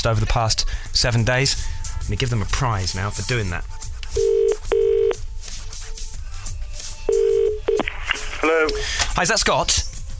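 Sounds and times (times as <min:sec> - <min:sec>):
speech: 0:00.0 - 0:04.3, 0:08.7 - 0:09.9
telephone ringing out on the line: 0:04.2 - 0:05.2, 0:07.1 - 0:07.9.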